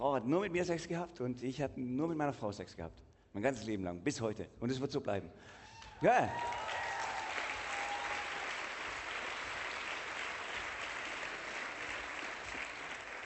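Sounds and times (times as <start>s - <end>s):
speech: 0.0s - 6.6s
audience applause: 6.2s - 13.2s.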